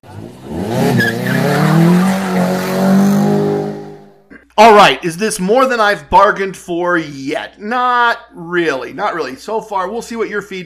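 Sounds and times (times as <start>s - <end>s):
car tire squeal: 0.0s - 4.0s
speech: 4.6s - 10.6s.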